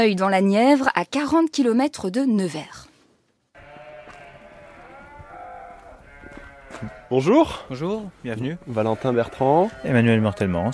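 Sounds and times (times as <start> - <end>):
speech: 0.0 - 2.9, 6.8 - 10.7
sheep bleating in a chorus: 3.6 - 7.7, 8.3 - 10.7.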